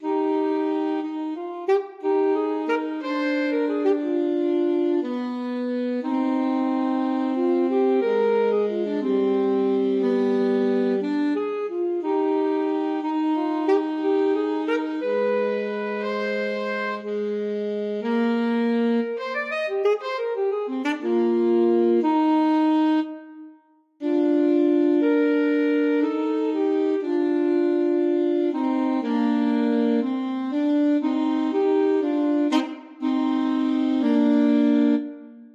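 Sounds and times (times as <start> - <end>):
alto saxophone duet playing an adagio: 0.0 - 35.5.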